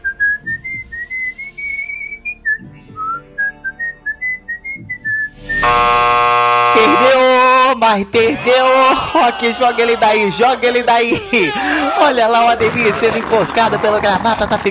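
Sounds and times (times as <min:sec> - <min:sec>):
contestant whistling the national anthem: 0:00.0 - 0:05.6
loud steady game-show buzzer tone: 0:05.6 - 0:07.7
speech: 0:07.9 - 0:14.6
laughter: 0:08.2 - 0:14.6.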